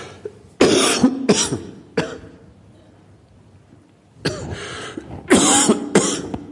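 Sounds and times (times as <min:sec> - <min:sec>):
person coughing: 0:00.6 - 0:02.4, 0:04.2 - 0:06.5.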